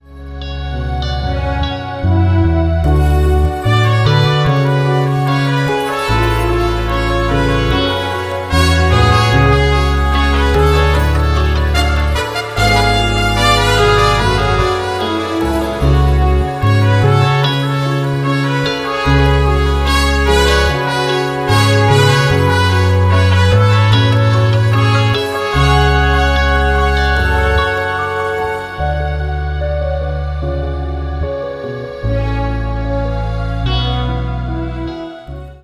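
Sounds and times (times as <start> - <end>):
modal piano: 0.0 - 35.6.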